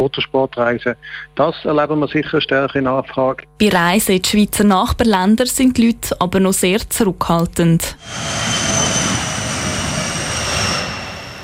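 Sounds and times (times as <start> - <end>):
speech: 0.0 - 8.8
airplane flying overhead with roar and high whine: 8.0 - 11.4.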